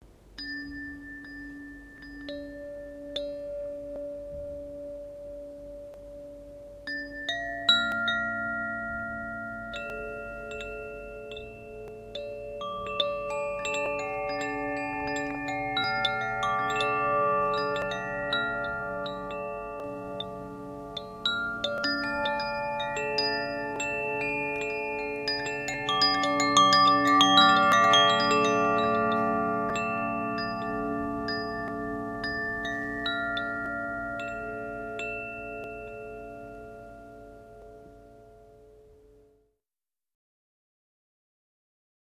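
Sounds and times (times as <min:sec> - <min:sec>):
Koshi Aqua chime: 0:00.4 - 0:38.7.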